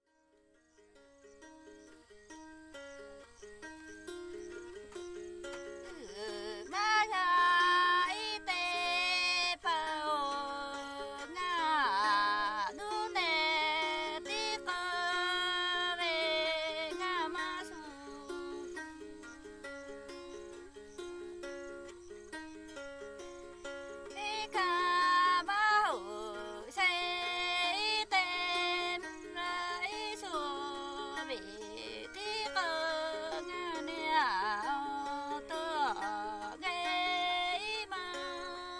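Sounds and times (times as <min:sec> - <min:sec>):
lute accompaniment: 0:00.0 - 0:38.7
Red Lahu woman singing a song: 0:04.4 - 0:19.2, 0:23.8 - 0:38.7.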